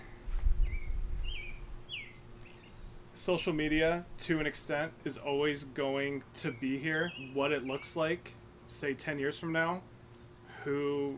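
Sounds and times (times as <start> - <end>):
low rumble and hum: 0.0 - 11.1
bird calling outdoors with thin whistled chirps: 0.6 - 3.0, 6.4 - 8.2
speech: 3.2 - 9.9, 10.6 - 11.1.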